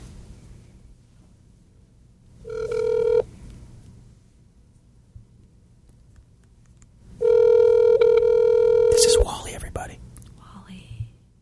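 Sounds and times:
telephone ringback tone as a call is patched through from a phone: 2.5s - 3.3s, 7.2s - 9.2s.

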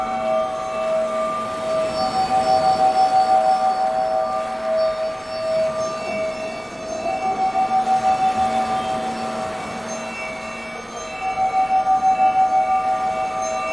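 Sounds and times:
Tibetan bowls ringing in a sustained layered drone: 0.0s - 13.7s
soft grainy hiss: 0.0s - 13.7s.

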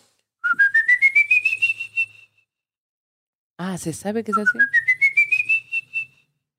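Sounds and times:
person whistling a rising wavering tune imitating a legendary ghost's whistle: 0.4s - 2.5s, 4.4s - 6.3s
speech: 3.6s - 4.8s.

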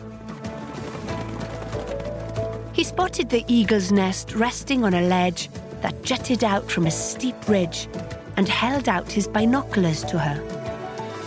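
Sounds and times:
horses' hooves clopping as riders head into the mountains: 0.0s - 4.2s
speech: 2.8s - 10.6s.

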